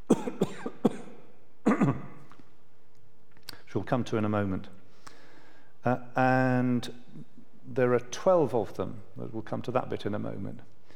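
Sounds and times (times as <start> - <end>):
person clearing throat: 0.1 - 2.2
speech: 3.8 - 4.8, 5.8 - 10.7.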